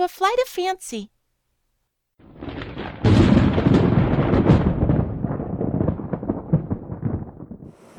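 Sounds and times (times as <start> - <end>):
speech: 0.0 - 1.1
loud thunder crash during stormy weather: 2.2 - 7.9.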